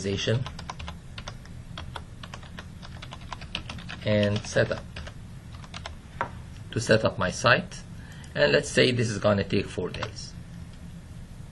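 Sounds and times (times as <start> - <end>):
speech: 0.0 - 0.6, 4.0 - 5.0, 6.8 - 7.8, 8.4 - 10.3
typing on a computer keyboard while entering project schedule activities: 0.4 - 5.9.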